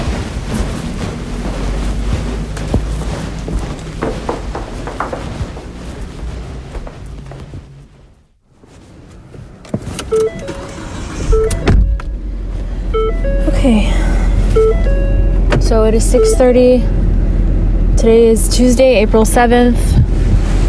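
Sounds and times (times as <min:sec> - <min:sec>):
car engine rumbling: 0:00.0 - 0:20.6
car electronic chimes: 0:13.0 - 0:13.6, 0:14.6 - 0:15.3
speech: 0:15.9 - 0:17.0, 0:18.0 - 0:20.0.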